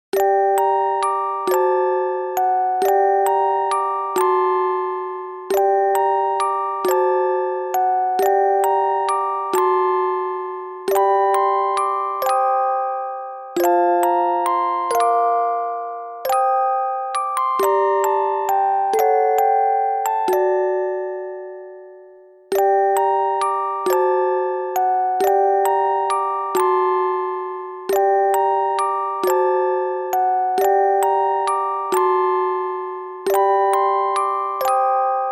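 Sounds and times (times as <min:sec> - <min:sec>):
horror music box: 0:00.1 - 0:35.3.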